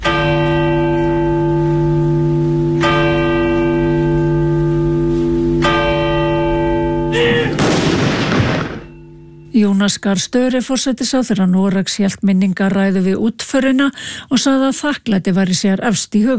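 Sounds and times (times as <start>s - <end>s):
church bells tolling at a royal funeral in Oslo: 0.0s - 9.6s
cannon salute at a royal funeral: 7.2s - 9.0s
speech: 9.8s - 16.3s.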